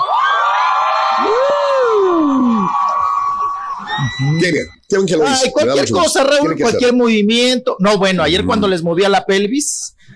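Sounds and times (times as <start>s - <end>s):
person whooping: 0.0s - 4.8s
large concert crowd screaming and cheering: 0.0s - 4.9s
speech: 4.2s - 10.0s.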